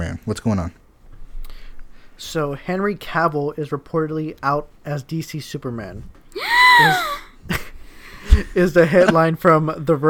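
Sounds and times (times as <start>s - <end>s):
speech: 0.1s - 0.8s, 2.2s - 7.6s, 8.2s - 10.0s
dramatic surprised gasp: 6.4s - 8.4s.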